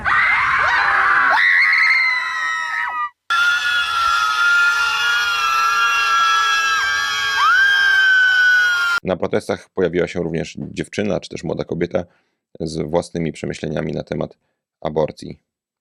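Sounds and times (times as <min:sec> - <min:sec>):
large protest crowd screaming: 0:00.0 - 0:09.0
speech: 0:09.1 - 0:15.5.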